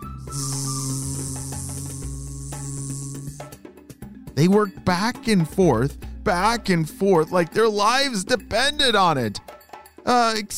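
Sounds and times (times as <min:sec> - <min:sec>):
bees buzzing: 0:00.0 - 0:03.6
bright airy hiss: 0:00.0 - 0:03.6
speech: 0:04.4 - 0:09.4, 0:10.0 - 0:10.5.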